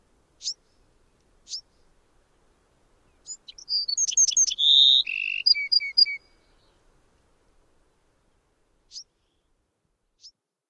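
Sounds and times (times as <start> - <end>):
Bewick's wren song: 0.3 - 6.9, 8.3 - 9.6, 10.2 - 10.4.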